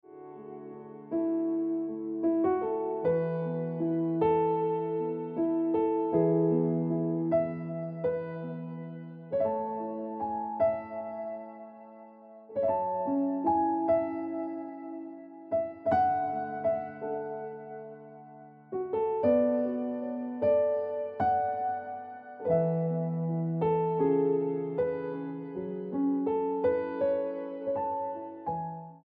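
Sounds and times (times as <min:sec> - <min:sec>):
piano ringtone music: 0:00.0 - 0:29.0.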